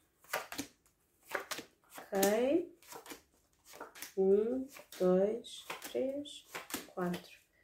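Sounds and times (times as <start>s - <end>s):
tarot cards being shuffled and laid out for a reading: 0.2s - 5.0s, 5.6s - 7.4s
speech: 2.1s - 2.7s, 4.2s - 7.4s.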